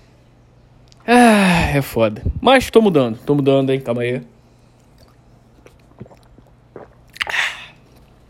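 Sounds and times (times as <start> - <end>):
speech: 1.1 - 4.3
person gulping water: 4.8 - 8.2
soft wet mouth clicks: 4.8 - 8.2.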